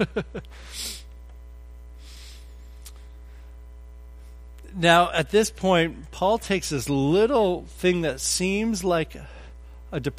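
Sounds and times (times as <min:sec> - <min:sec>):
speech: 0:00.0 - 0:01.0, 0:04.8 - 0:10.1
person blowing their nose: 0:00.6 - 0:01.1.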